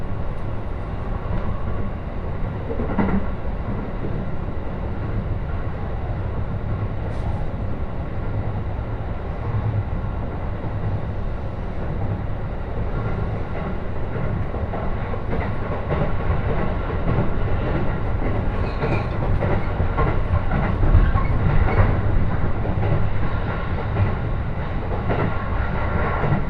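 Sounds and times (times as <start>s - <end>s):
moving train rumbling on the Joban Line: 0.0s - 26.4s
faint rattles and clicks inside a moving train: 13.1s - 23.1s.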